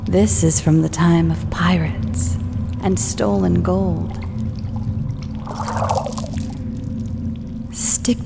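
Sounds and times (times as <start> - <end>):
speech: 0.1 - 4.2, 8.0 - 8.2
water trickling and splashing in a dark cenote: 3.4 - 7.7.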